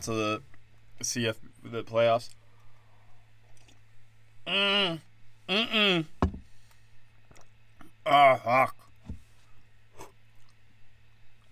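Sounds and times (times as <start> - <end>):
speech: 0.0 - 2.4, 4.5 - 6.2, 8.0 - 8.8
quiet steady electrical hum: 0.0 - 11.5
wet gulp swallowing an ice cube from whiskey: 7.2 - 9.0.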